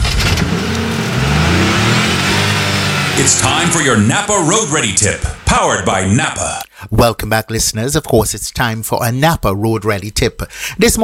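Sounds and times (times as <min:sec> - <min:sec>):
car engine starting and revving: 0:00.0 - 0:06.4
speech: 0:03.2 - 0:11.0.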